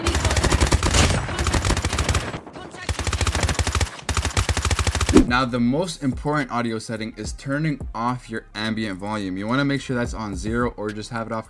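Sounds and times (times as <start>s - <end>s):
rapid automatic gunfire in a video game shooter: 0.0s - 5.4s
hit marker sounds in a video game shooter: 5.1s - 5.4s
speech: 5.3s - 11.4s.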